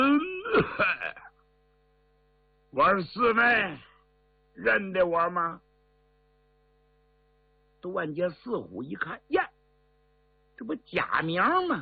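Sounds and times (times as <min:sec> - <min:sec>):
voice imitating a man's single cough: 0:00.0 - 0:01.4
speech: 0:02.8 - 0:03.9, 0:04.6 - 0:05.6, 0:07.8 - 0:09.4, 0:10.6 - 0:11.7.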